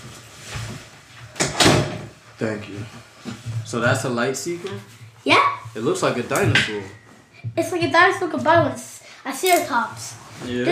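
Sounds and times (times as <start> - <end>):
door shut with firm thud: 1.4 - 2.1
speech: 2.4 - 10.6.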